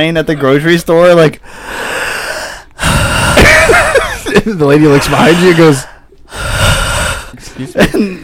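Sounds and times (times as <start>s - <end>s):
speech: 0.0s - 2.1s, 3.7s - 6.5s, 7.6s - 8.2s
voice imitating labored heavy breathing with a loud gasping inhale: 1.4s - 4.0s, 4.8s - 7.8s.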